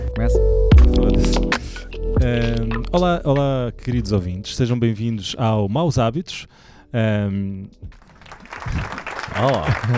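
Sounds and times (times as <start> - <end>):
speech: 0.2 - 8.0, 8.6 - 9.9
applause: 8.0 - 9.9
laughter: 8.0 - 9.9.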